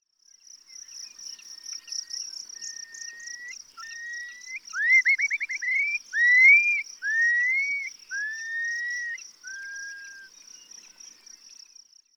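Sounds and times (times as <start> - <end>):
European Starling calling: 2.6 - 10.3.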